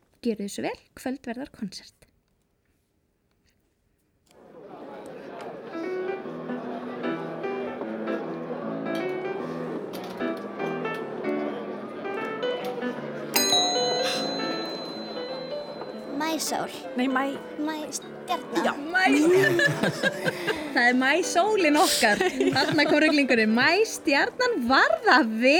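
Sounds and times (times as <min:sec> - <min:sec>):
speech: 0:00.2 - 0:02.1, 0:16.4 - 0:25.5
laughter: 0:04.4 - 0:07.8, 0:19.0 - 0:23.8
restaurant chatter: 0:04.4 - 0:25.5
restaurant piano playing: 0:05.5 - 0:25.3
glasses clinking: 0:13.4 - 0:16.1.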